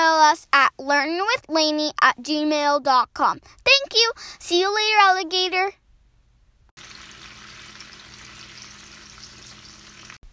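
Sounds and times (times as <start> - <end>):
speech: 0.4 - 5.8
bacon frying in a pan: 6.8 - 10.2.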